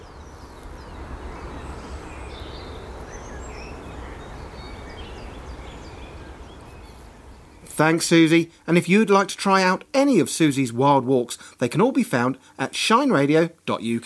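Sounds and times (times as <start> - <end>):
ambient noise: 0.0 - 8.3
birds singing and chirping outdoors: 0.0 - 8.3
speech: 7.8 - 14.0.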